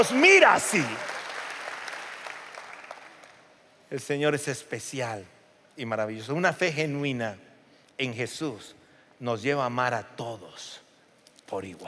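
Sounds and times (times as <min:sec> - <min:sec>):
speech: 0:00.0 - 0:01.1, 0:03.9 - 0:10.8, 0:11.5 - 0:11.8
church congregation applauding: 0:00.0 - 0:03.4.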